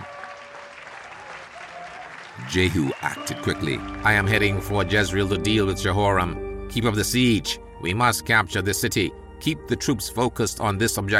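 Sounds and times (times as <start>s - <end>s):
thousands of soldiers cheering and clapping: 0.0s - 5.1s
speech: 2.5s - 11.1s.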